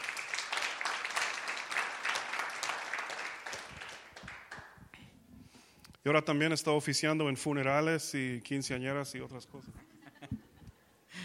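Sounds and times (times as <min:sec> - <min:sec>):
crowd applauding: 0:00.0 - 0:04.8
speech: 0:06.0 - 0:09.9.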